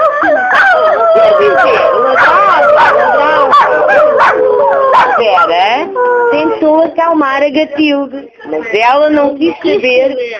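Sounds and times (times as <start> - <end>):
two large spotted dogs with toothache whimpering and howling: 0.0 - 6.8
speech: 5.2 - 10.3.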